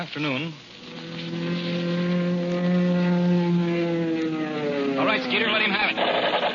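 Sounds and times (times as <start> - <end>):
speech: 0.0 - 0.7, 5.0 - 6.2
propeller airplane engines droning during an aerial dogfight staged for a film: 0.7 - 6.5.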